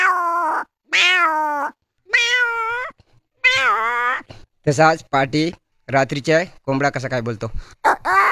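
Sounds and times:
hungry cat meowing: 0.0s - 4.4s
speech: 4.6s - 8.2s.

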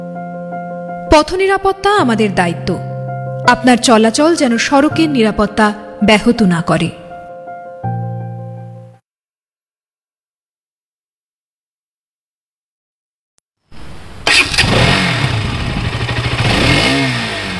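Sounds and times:
speech: 1.1s - 2.9s, 3.5s - 7.0s
motorcycle engine starting and revving loudly: 13.8s - 17.5s.

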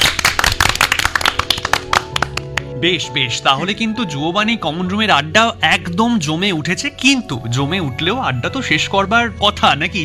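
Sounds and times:
loud applause for a singer: 0.0s - 2.3s
speech: 2.8s - 10.0s.

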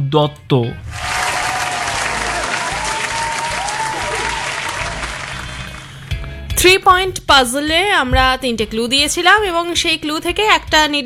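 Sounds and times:
speech: 0.1s - 1.0s, 6.6s - 11.0s
studio audience applause at a quiz show: 0.9s - 6.2s.

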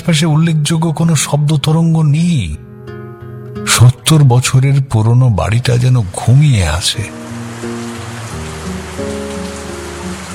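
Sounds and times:
speech: 0.0s - 2.7s, 3.8s - 7.3s
steady monsoon rain falling outside an old house: 5.8s - 10.3s.

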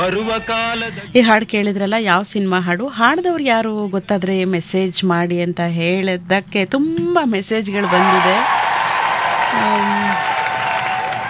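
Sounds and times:
speech: 0.0s - 8.7s, 9.6s - 10.4s
applause from many hands: 7.8s - 11.2s.

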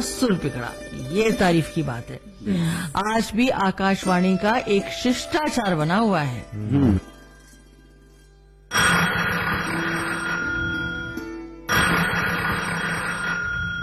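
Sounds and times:
speech: 0.0s - 7.1s
telephone ringing in shrill bursts: 8.7s - 13.8s.

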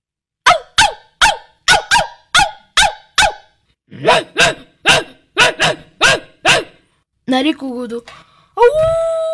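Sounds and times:
big dog barking: 0.5s - 6.8s
speech: 3.9s - 4.6s, 7.4s - 9.2s.

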